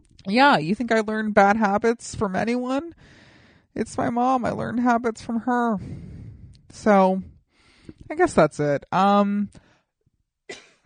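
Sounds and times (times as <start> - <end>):
speech: 0.2 - 3.2, 3.8 - 6.1, 6.7 - 7.3, 8.1 - 9.6, 10.5 - 10.8
rough breath: 3.0 - 3.7, 5.8 - 8.0
sharp cough: 10.5 - 10.8.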